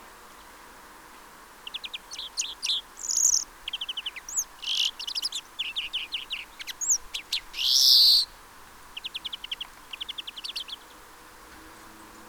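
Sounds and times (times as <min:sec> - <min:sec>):
European greenfinch twittering in trilled runs, Chloris chloris: 0:01.6 - 0:08.3, 0:08.9 - 0:11.0.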